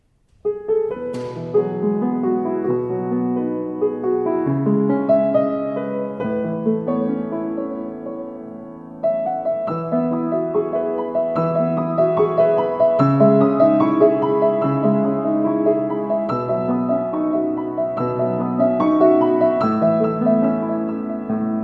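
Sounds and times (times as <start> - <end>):
Grotrian-Steinweg grand piano: 0.0 - 21.6.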